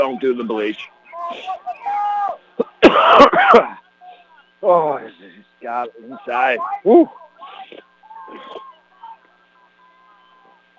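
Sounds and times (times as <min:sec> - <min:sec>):
murmured talk: 0:00.0 - 0:10.7
speech: 0:00.1 - 0:02.1, 0:03.0 - 0:03.8, 0:04.6 - 0:08.6
harsh coughing: 0:02.6 - 0:03.8.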